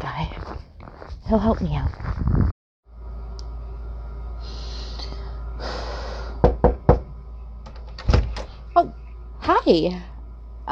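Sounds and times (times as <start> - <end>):
steady low mechanical hum: 0.0 - 10.7
speech: 1.3 - 2.0, 9.6 - 10.1
heavy breaths: 4.4 - 6.6
quick sharp knocking on a door: 6.4 - 7.1.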